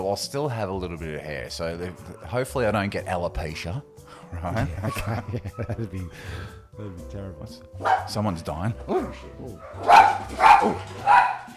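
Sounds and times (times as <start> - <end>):
speech: 0.0 - 11.3
laughter: 4.4 - 6.2
dog barking: 7.8 - 8.2, 8.9 - 11.5.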